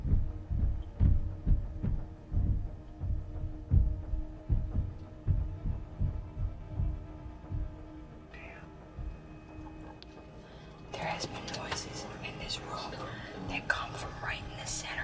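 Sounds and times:
dull thuds of something walking overhead: 0:00.0 - 0:08.0
faint low hum: 0:00.0 - 0:15.0.

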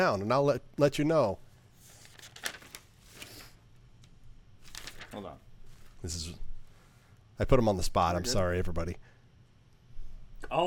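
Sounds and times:
speech: 0:00.0 - 0:01.4, 0:05.2 - 0:05.4, 0:06.0 - 0:06.5, 0:07.4 - 0:09.1
paper note pages being flipped through: 0:01.8 - 0:03.6, 0:04.6 - 0:06.0.

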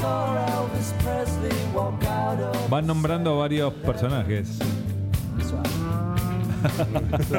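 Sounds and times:
song with sustained instrumental tones: 0:00.0 - 0:07.3
speech: 0:02.7 - 0:04.8, 0:06.6 - 0:07.3
low cow moo in a song: 0:05.3 - 0:06.7
laughter: 0:06.4 - 0:07.3.

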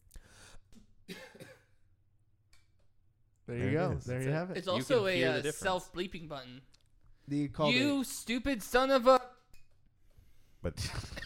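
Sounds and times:
muffled cough: 0:01.1 - 0:01.8
speech: 0:03.5 - 0:09.3, 0:10.6 - 0:11.2.

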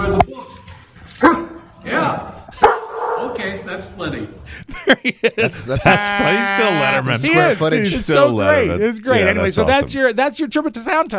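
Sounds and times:
pet dog barking: 0:01.2 - 0:01.6, 0:02.6 - 0:03.4
speech: 0:03.8 - 0:11.1
laughter: 0:04.5 - 0:08.1.

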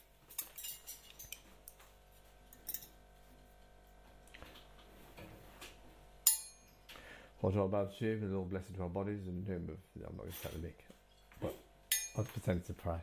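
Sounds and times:
metal cutlery clinking and scraping against dishes: 0:00.3 - 0:01.5, 0:11.9 - 0:12.4
speech: 0:07.4 - 0:11.6, 0:12.2 - 0:13.0.

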